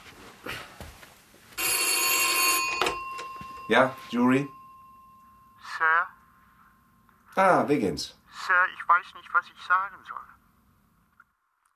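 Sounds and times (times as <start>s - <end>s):
telephone ringing: 1.6s - 7.0s
speech: 3.7s - 4.6s, 7.4s - 10.4s.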